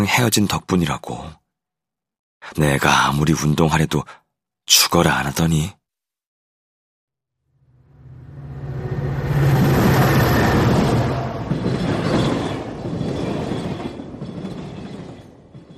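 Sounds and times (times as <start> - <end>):
speech: 0.0 - 1.4, 2.4 - 5.8
train running on rails, wheels clattering with a low rumble: 9.8 - 15.7.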